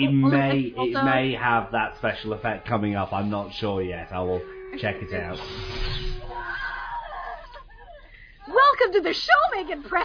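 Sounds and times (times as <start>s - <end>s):
speech: 0.0s - 6.1s, 8.8s - 10.0s
woman screaming: 6.1s - 10.0s.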